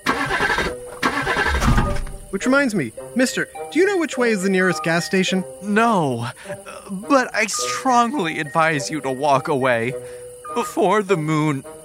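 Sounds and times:
dead car engine cranking without starting: 0.0 - 2.7
speech: 2.4 - 11.8.

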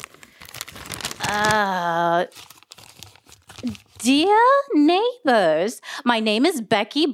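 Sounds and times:
crumpled paper flyer crinkling as it is pulled open: 0.0 - 4.3
speech: 1.3 - 2.5, 3.6 - 7.1.

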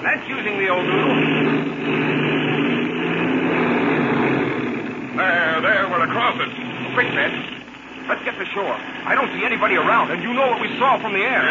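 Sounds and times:
speech: 0.0 - 1.0, 7.0 - 7.6, 8.4 - 11.4
airplane engine droning while taxiing fast across a soft lake bed: 0.0 - 11.4.

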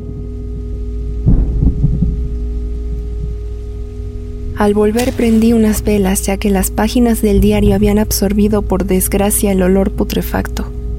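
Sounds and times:
rain falling: 0.2 - 10.4
low rumbling roll of thunder: 1.2 - 8.9
speech: 4.6 - 10.7.

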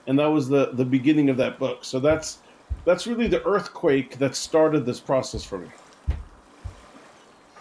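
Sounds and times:
faint hiss: 0.0 - 7.5
speech: 0.1 - 6.2
water slapping against a small boat's hull: 2.0 - 3.7, 5.3 - 7.5.

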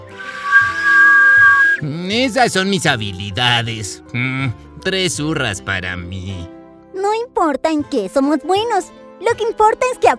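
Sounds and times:
breathy hissing whistle through the teeth: 0.0 - 1.8
speech: 1.8 - 6.6, 7.4 - 10.1.

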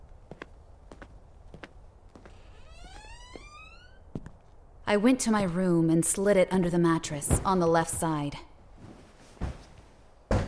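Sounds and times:
front door opening with a low knock: 2.2 - 4.4
speech: 4.9 - 8.5.

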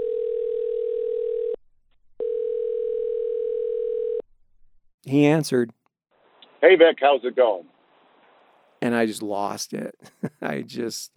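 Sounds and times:
telephone dial tone after dialing a number: 0.0 - 1.6, 2.2 - 4.2
speech: 5.0 - 5.8, 6.6 - 7.7, 8.8 - 11.1.

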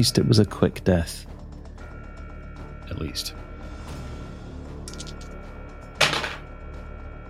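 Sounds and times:
speech: 0.0 - 1.3, 3.0 - 3.4
dice rolled for a sanity check clattering across a table: 4.9 - 5.3, 6.0 - 6.4.

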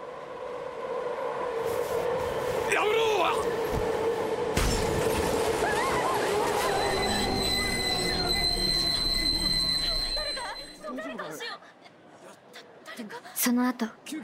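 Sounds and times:
train passing through a station platform: 0.0 - 10.8
high metallic train wheel squeals: 6.4 - 10.9
speech: 13.4 - 14.2.

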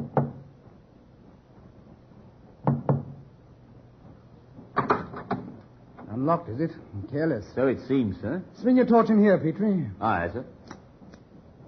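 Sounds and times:
discreet soft knocking on a wooden cabin door: 2.6 - 3.3
speech: 6.2 - 10.6.

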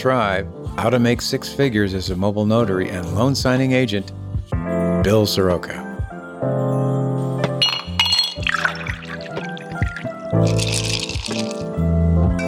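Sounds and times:
speech: 0.0 - 6.8
glasses clinking: 7.4 - 11.7
drink being poured: 7.6 - 11.8.

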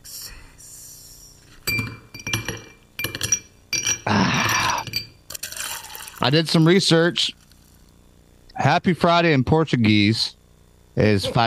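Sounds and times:
glasses clinking in a toast: 1.6 - 5.6
speech: 6.2 - 7.4, 8.6 - 10.4, 11.0 - 11.4.

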